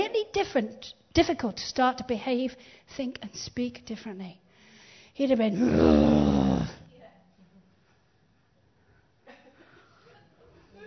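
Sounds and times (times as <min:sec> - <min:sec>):
speech: 0:00.4 - 0:04.4, 0:05.2 - 0:06.8
person imitating an animal growl: 0:05.5 - 0:06.8.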